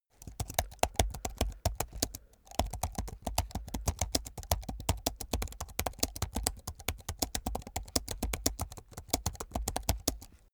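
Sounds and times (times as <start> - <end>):
hard typing on a laptop keyboard: 0.1 - 10.5.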